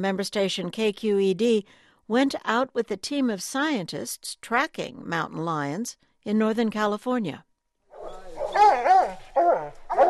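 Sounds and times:
speech: 0.0s - 7.5s
hound dogs baying on a mountain lion scent in the Santa Cruz Mountains: 7.9s - 10.0s.

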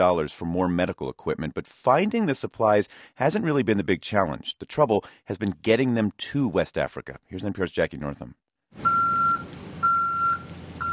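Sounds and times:
speech: 0.0s - 9.0s
box truck reversing beeps: 8.8s - 10.9s.

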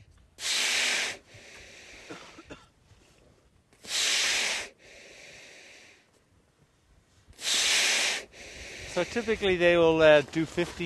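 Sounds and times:
seal rasping inhalations: 0.3s - 2.5s, 3.7s - 6.1s, 7.2s - 9.7s
surfaced seal snorting breath at a drilled hole: 0.4s - 2.3s, 3.8s - 6.0s, 7.3s - 9.4s
speech: 9.0s - 10.8s.

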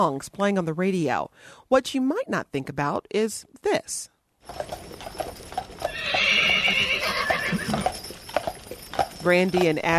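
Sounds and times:
speech: 0.0s - 5.2s, 9.2s - 9.9s
horse hooves clip-clopping: 4.4s - 9.9s
cross-country traveling horse whinnying in a long bright neigh: 5.8s - 8.0s.

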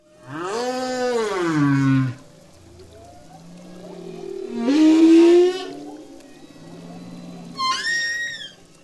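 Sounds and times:
humpback whale moaning calls: 0.2s - 8.8s
low murmuring sounds: 0.2s - 8.8s
humpback whale high rising squeal: 4.4s - 8.7s.

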